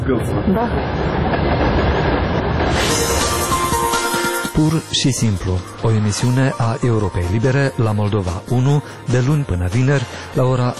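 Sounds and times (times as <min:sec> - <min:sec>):
speech: 0:00.0 - 0:02.0, 0:04.6 - 0:10.7
train rumbling past a house in Basarabeasca: 0:00.0 - 0:06.1.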